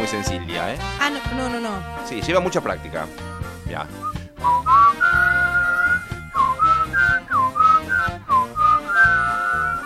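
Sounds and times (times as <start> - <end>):
speech: 0.0 - 4.7
soft backing accompaniment: 0.0 - 9.8
person whistling a lively melody: 4.0 - 9.8.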